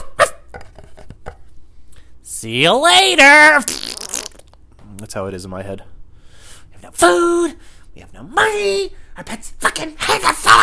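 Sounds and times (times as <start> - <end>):
person imitating a barking dog: 0.0 - 1.2, 2.9 - 3.9
speech: 2.4 - 3.9, 5.1 - 5.9, 7.0 - 10.6.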